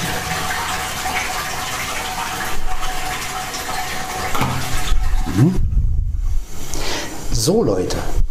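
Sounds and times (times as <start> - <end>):
running water rinsing something: 0.0 - 5.6
speech: 5.4 - 5.6, 7.4 - 8.2.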